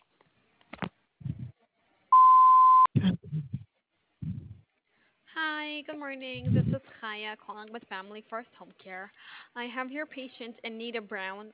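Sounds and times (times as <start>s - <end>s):
phone voicemail system beep: 2.1s - 2.9s
speech: 5.8s - 11.5s
voice fragments: 6.3s - 6.9s.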